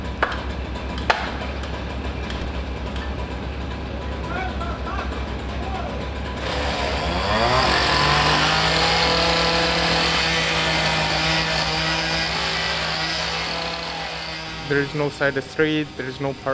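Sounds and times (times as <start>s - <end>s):
city noise: 0.0s - 16.5s
constant wash of other vehicles: 0.0s - 16.5s
engine revving up and droning: 4.2s - 16.5s
speech: 14.8s - 16.5s.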